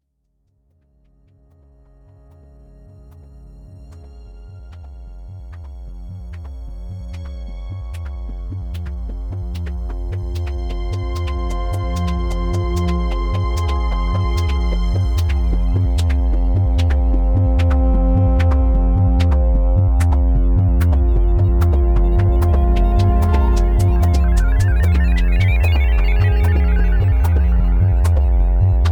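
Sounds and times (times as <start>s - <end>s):
synthesizer mix: 6.3s - 28.9s.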